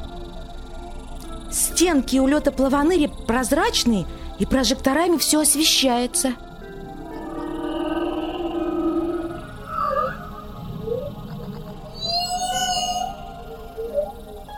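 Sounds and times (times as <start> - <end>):
speech: 1.5 - 6.5
steady murky underwater hum: 6.4 - 14.5
blue whale long low droning moan underwater: 6.6 - 14.4
blue whale short rising whoops and high warbling cry: 6.9 - 11.2, 12.0 - 14.2.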